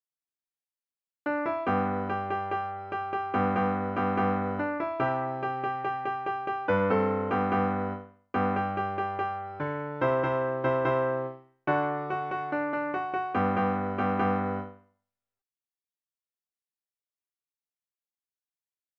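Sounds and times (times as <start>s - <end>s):
piano piece: 1.3s - 14.8s.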